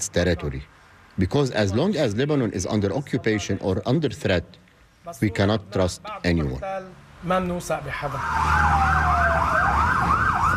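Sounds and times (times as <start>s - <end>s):
speech: 0.2s - 9.5s
emergency vehicle sirens wailing: 7.9s - 10.5s.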